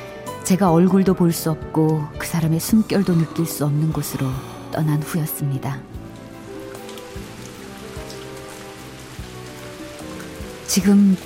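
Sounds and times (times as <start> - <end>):
soft sustained low tones of music: 0.0 - 11.2
speech: 0.5 - 6.0, 10.8 - 11.2
steady rain pattering on a surface: 5.8 - 11.2.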